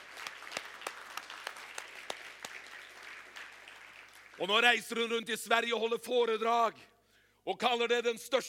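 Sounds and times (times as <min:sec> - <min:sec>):
crowd applauding in a large room: 0:00.0 - 0:04.6
speech: 0:04.4 - 0:08.4.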